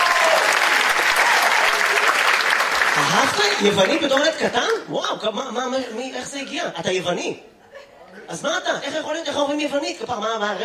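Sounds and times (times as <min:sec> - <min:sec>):
audience applauding: 0:00.0 - 0:04.8
speech: 0:03.2 - 0:07.6, 0:08.2 - 0:10.6.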